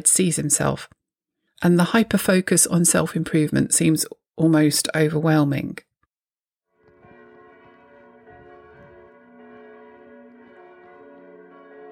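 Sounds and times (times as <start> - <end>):
speech: 0.0 - 1.0, 1.6 - 5.9
church bells pealing: 6.8 - 11.9.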